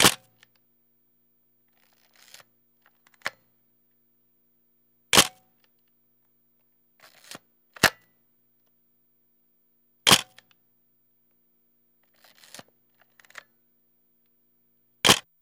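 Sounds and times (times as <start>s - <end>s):
35mm camera handling movement: 1.8s - 3.4s, 7.0s - 8.1s, 12.1s - 13.5s
35mm camera shutter clicking: 5.2s - 5.4s, 7.0s - 8.1s, 10.1s - 10.4s, 12.2s - 12.6s.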